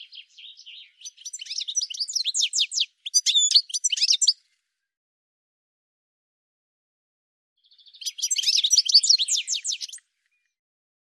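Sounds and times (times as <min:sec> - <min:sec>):
bird singing: 0:00.0 - 0:04.9, 0:07.6 - 0:10.6.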